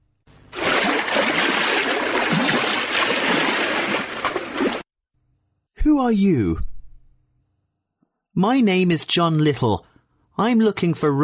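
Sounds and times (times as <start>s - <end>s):
water splashing and rushing in a stream: 0.5s - 4.9s
speech: 6.0s - 6.7s, 8.4s - 11.2s.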